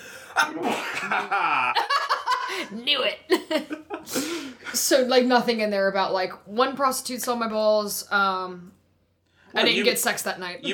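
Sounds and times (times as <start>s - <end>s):
person sneezing: 0.4s - 1.1s
speech: 0.4s - 1.9s, 2.5s - 8.8s, 9.5s - 10.7s
vocal noises like laughter: 0.4s - 4.3s.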